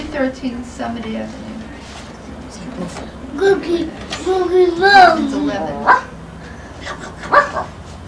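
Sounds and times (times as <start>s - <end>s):
faint hum: 0.0s - 8.0s
speech: 0.2s - 1.5s, 2.7s - 6.1s
dog barking: 5.8s - 6.2s, 7.2s - 7.8s.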